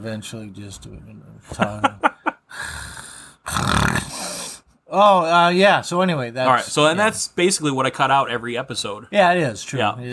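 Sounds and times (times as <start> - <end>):
speech: 0.0 - 2.7, 4.9 - 10.1
person imitating snoring: 2.5 - 4.6.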